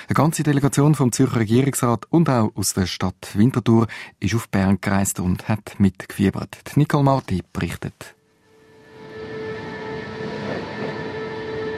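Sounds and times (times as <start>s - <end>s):
speech: 0.1s - 8.2s
electric train departing from station platform: 8.6s - 11.7s.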